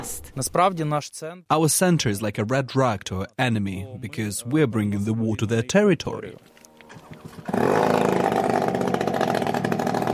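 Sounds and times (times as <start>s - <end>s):
speech: 0.1s - 6.5s, 7.4s - 8.2s
small drone propeller engine buzzing: 6.9s - 10.1s.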